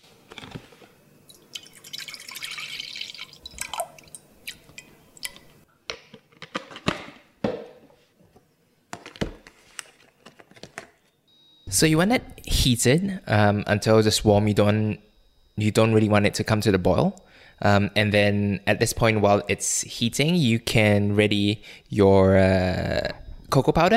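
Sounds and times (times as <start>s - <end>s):
whipping cream and milk being poured into a pot: 1.3s - 5.4s
speech: 11.8s - 23.9s.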